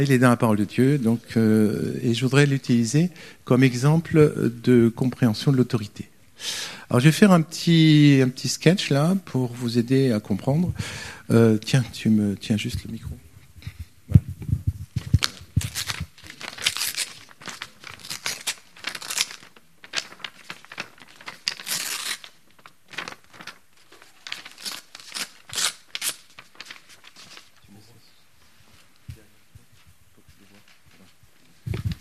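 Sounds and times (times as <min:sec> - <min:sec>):
speech: 0:00.0 - 0:13.2, 0:14.1 - 0:14.3
sheet of paper being torn in two: 0:15.2 - 0:27.5.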